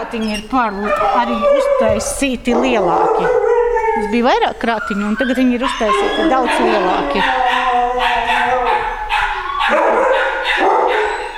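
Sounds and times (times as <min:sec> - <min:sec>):
dogs barking and howling in an animal shelter: 0:00.0 - 0:11.3
speech: 0:00.1 - 0:03.4, 0:04.0 - 0:08.9.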